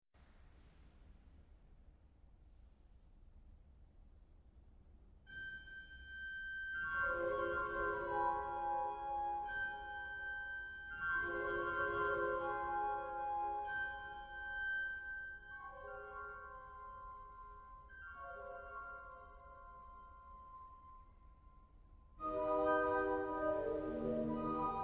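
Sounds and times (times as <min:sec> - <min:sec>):
Cavaille-Coll flutes: 0:05.3 - 0:16.8, 0:22.2 - 0:24.8.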